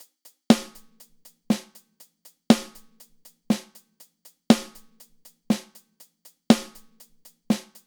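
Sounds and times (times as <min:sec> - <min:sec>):
unbalanced hi-hat: 0:00.0 - 0:07.8
unbalanced snare drum: 0:00.5 - 0:01.9, 0:02.5 - 0:03.9, 0:04.5 - 0:05.9, 0:06.5 - 0:07.8.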